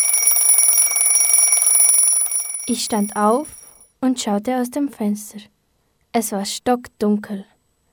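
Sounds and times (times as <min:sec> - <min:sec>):
alarm clock ringing with high-pitched electronic tone: 0:00.0 - 0:03.8
speech: 0:02.7 - 0:05.5, 0:06.1 - 0:07.5.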